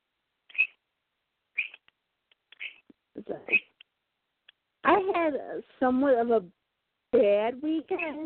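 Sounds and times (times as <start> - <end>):
small excited pet bird chirping: 0.5 - 0.8, 1.5 - 3.9, 7.8 - 8.2
speech: 3.2 - 3.7, 5.2 - 8.2.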